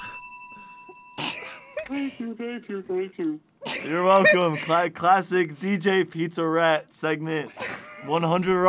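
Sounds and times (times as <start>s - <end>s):
bright bell ringing with a clear metallic tone: 0.0s - 1.9s
speech: 1.9s - 8.6s.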